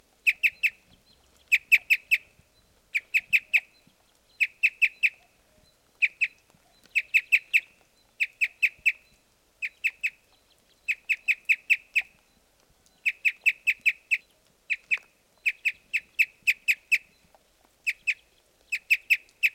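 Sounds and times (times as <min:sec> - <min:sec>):
Red Crossbill Type S06 calls: 0:00.2 - 0:12.2, 0:12.9 - 0:19.5.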